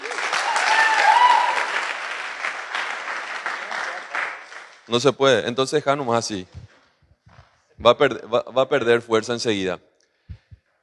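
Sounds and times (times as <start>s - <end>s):
room full of people applauding: 0.0s - 4.9s
speech: 4.9s - 6.7s, 7.8s - 9.9s.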